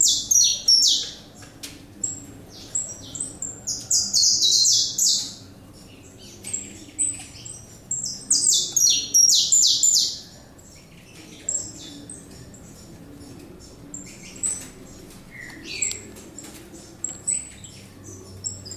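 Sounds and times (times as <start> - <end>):
saffron finch singing bright high chirps in the Pantanal: 0.0 - 18.7.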